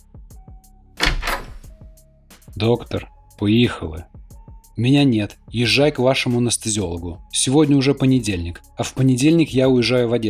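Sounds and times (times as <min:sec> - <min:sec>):
door opening with a short rough scraping rattle: 0:01.0 - 0:01.8
speech: 0:02.6 - 0:04.2, 0:04.8 - 0:10.2.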